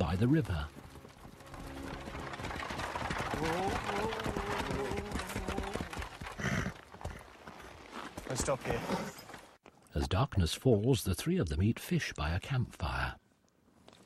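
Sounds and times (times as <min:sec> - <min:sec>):
horse hooves clip-clopping as a horse is ridden beside a river: 0:00.0 - 0:09.8
speech: 0:00.1 - 0:00.8, 0:03.4 - 0:05.0, 0:08.3 - 0:09.2, 0:10.0 - 0:13.1.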